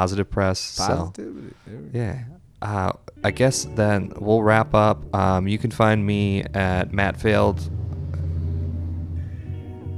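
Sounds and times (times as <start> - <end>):
speech: 0.0 - 7.8
heavy truck engine rumbling past: 2.3 - 9.9.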